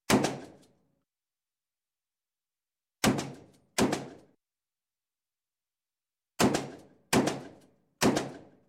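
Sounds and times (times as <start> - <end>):
12 gauge shotgun single shot: 0.0 - 0.6, 3.0 - 4.3, 6.4 - 8.6.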